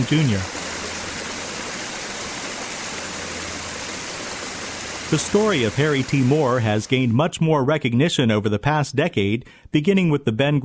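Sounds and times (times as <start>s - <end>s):
speech: 0.0s - 0.6s, 5.1s - 10.6s
water flowing over a reflecting pool fountain in a memorial meditation garden: 0.0s - 7.4s.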